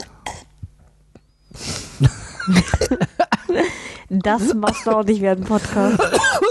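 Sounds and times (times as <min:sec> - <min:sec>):
coughing and throat clearing: 0:00.2 - 0:00.7, 0:02.5 - 0:03.5, 0:04.4 - 0:05.0, 0:05.9 - 0:06.4
speech: 0:02.0 - 0:03.0, 0:04.2 - 0:06.4.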